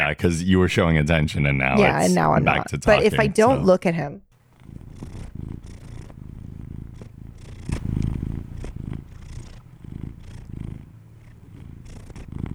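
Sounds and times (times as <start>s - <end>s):
speech: 0.1s - 4.3s
cat purring and rubbing its face on the microphone: 4.3s - 12.5s.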